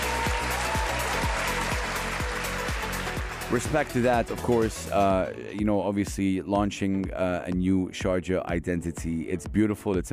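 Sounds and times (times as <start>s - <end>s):
crowd clapping: 0.0s - 5.0s
speech: 3.5s - 10.1s.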